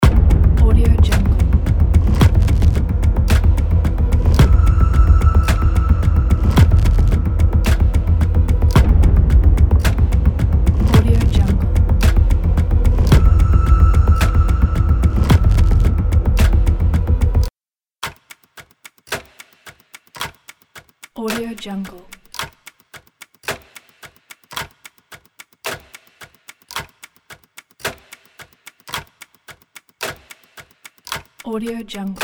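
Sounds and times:
dark ambient background music loop: 0.0s - 17.5s.

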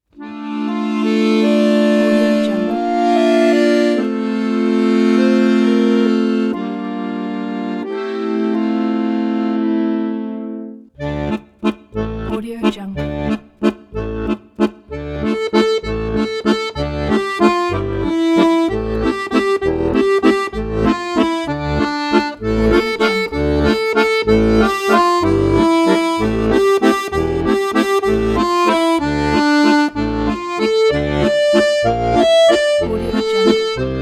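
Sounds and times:
Jewish folk song accordion solo: 0.0s - 33.9s.

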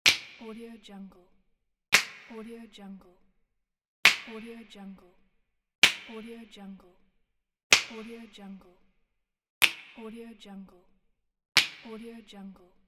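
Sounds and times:
finger snap: 0.1s - 0.6s, 1.9s - 2.4s, 4.0s - 4.8s, 5.8s - 6.4s, 7.7s - 8.4s, 9.6s - 10.2s, 11.6s - 12.1s.

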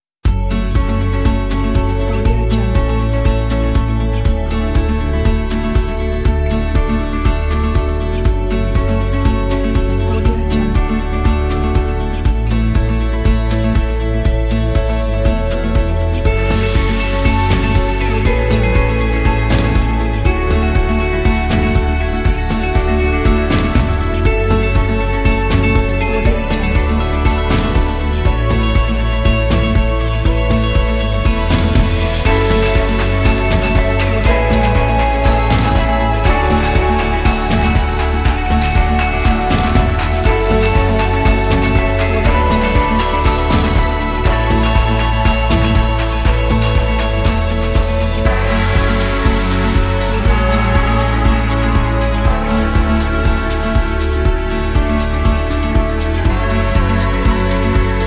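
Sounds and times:
ambient indie acoustic music: 0.2s - 58.0s.

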